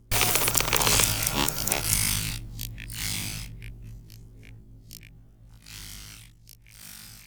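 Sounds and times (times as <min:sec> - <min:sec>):
tiny robot mechanism: 0:00.1 - 0:02.3.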